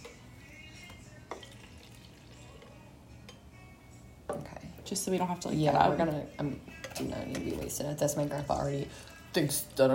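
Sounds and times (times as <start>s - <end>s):
cocktail trickling back into a container: 1.4s - 2.7s
speech: 4.3s - 9.9s.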